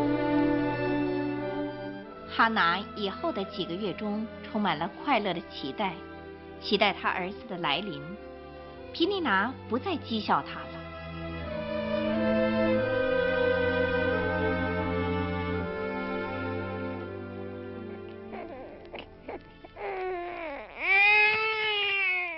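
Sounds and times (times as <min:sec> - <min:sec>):
sustained music: 0:00.0 - 0:22.3
speech: 0:02.4 - 0:08.3, 0:08.9 - 0:10.7
newborn baby crying: 0:18.0 - 0:22.3.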